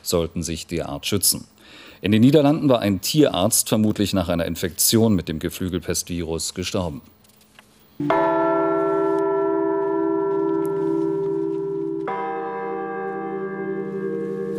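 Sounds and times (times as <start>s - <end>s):
speech: 0.1s - 7.2s, 8.0s - 8.3s
newly cast church bells ringing in Dresden Germany: 8.0s - 14.5s.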